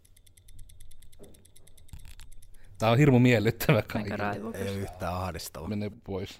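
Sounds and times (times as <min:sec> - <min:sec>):
stopwatch ticking: 0:00.0 - 0:04.3
speech: 0:02.8 - 0:06.3.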